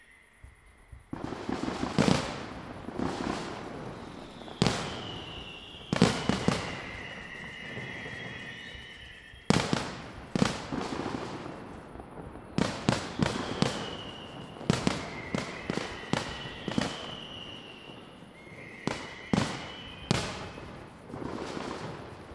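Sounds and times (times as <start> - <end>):
fireworks: 0.4 - 22.3.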